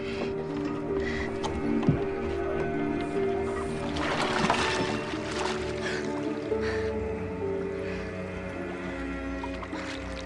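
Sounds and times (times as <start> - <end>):
steady low tonal hum: 0.0 - 10.2
woman swimming splashes in water: 3.7 - 6.2.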